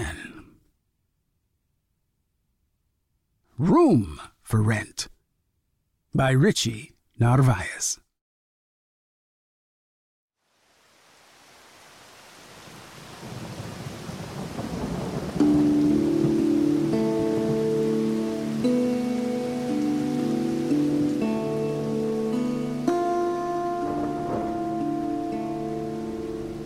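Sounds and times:
speech: 3.6 - 5.2, 6.1 - 8.0
heavy rain: 10.4 - 26.6
low rumbles of thunder: 12.7 - 18.9, 23.8 - 26.6.

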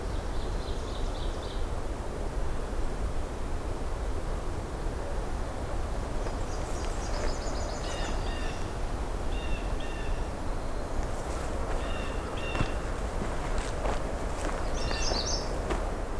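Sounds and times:
steady rushing hiss: 0.0 - 16.1
magnolia warbler singing: 6.2 - 15.8.

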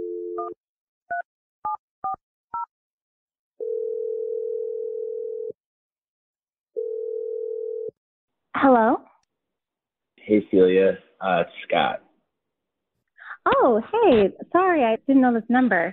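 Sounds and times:
telephone dial tone: 0.0 - 0.6, 3.6 - 5.6, 6.8 - 7.9
telephone ringing tones: 3.6 - 5.6, 6.8 - 7.9
speech: 8.6 - 9.1, 10.3 - 12.0, 13.4 - 15.9.

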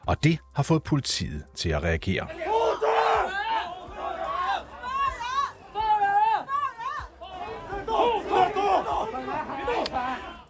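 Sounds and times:
speech: 0.1 - 2.5
large protest crowd shouting and chanting in unison: 2.3 - 10.4.

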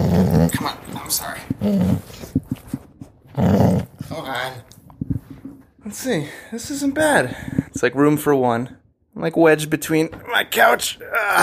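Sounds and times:
dog growling after being woken from sleep: 0.0 - 2.4, 3.2 - 4.6
speech: 0.5 - 2.4, 3.4 - 4.7, 5.9 - 11.4.

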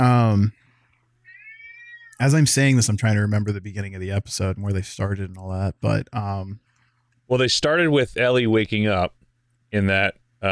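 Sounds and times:
cat meowing: 1.3 - 2.2
speech: 2.2 - 6.7, 7.3 - 10.4.

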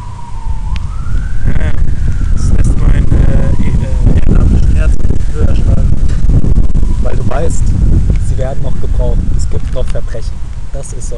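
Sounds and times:
police motorcycle siren passing by: 0.0 - 7.6
heavy low rumble of traffic: 0.0 - 11.1
wind noise: 0.0 - 11.1
speech: 8.4 - 11.1.

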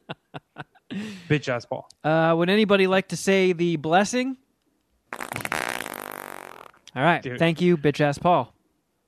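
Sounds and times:
laughter: 0.0 - 1.2
speech: 0.9 - 4.4, 7.0 - 8.5
long loud buzzy fart: 5.1 - 6.8.

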